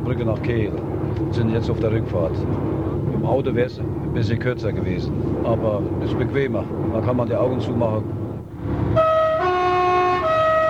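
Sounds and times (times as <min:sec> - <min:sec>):
low rumbling: 0:00.0 - 0:10.6
speech: 0:00.1 - 0:08.8
French train horn sounding as the train enters or leaves a tunnel: 0:08.9 - 0:10.6.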